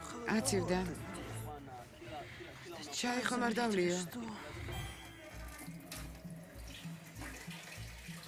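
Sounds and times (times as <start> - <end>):
speech: 0.3 - 1.1, 3.0 - 4.7
water running steadily from a tap: 5.5 - 8.2.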